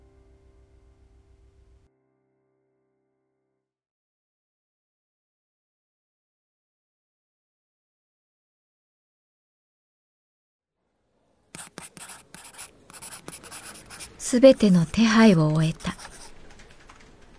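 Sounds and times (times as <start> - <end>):
pen scratching across a paper application form: 11.6 - 16.4
speech: 14.3 - 16.0.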